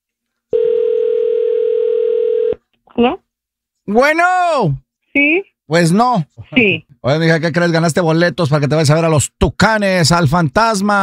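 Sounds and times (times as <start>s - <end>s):
telephone dial tone: 0.5s - 2.6s
speech: 3.0s - 3.2s, 3.9s - 11.0s.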